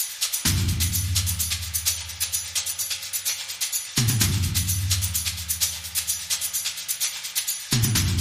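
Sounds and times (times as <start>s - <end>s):
drone rhythm: 0.4s - 3.2s, 3.9s - 7.1s, 7.7s - 8.1s.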